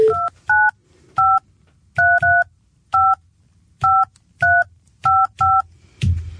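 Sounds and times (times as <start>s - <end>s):
touch-tone telephone keypad beeps dialing a number: 0.0s - 1.4s, 2.0s - 3.2s, 3.8s - 5.7s.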